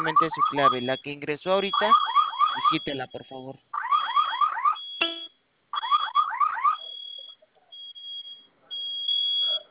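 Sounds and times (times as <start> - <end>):
speech: 0.0 - 3.8
home security alarm steady piercing high tone: 0.0 - 9.6
home security alarm rising electronic whoops: 1.6 - 3.0, 3.8 - 9.6.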